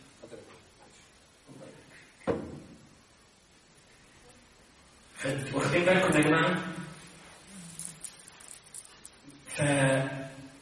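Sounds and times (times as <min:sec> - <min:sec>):
door shutting with a firm thud: 0:02.2 - 0:02.8
speech: 0:05.2 - 0:06.8, 0:09.6 - 0:10.2.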